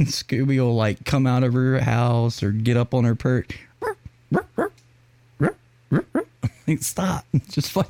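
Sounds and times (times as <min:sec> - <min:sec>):
speech: 0:00.0 - 0:03.7, 0:04.3 - 0:04.7, 0:05.4 - 0:06.1, 0:06.7 - 0:07.8
dog barking: 0:03.8 - 0:04.7.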